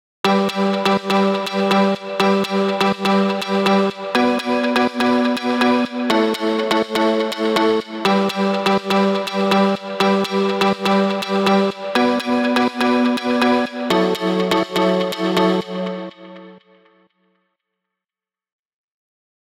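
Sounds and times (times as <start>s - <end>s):
house music chords at 123 bpm: 0.3s - 16.4s.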